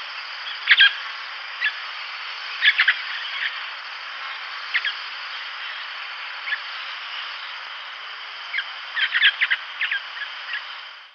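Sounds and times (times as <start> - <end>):
Pionus maximiliani calling: 0.5 - 1.8, 2.5 - 3.7, 4.6 - 5.1, 8.5 - 10.7.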